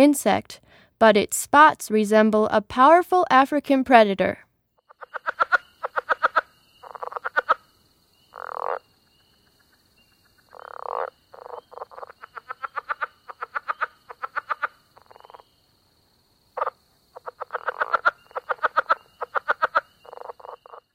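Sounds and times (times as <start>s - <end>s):
speech: 0.0s - 4.5s
southern leopard frog clucking and croaking: 4.8s - 15.6s, 16.5s - 20.9s
faint insect-like hum: 4.8s - 20.9s.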